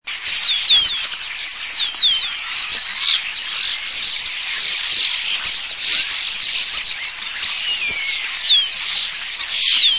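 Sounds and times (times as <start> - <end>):
starlings calling at a hunting hide: 0.0 - 9.9.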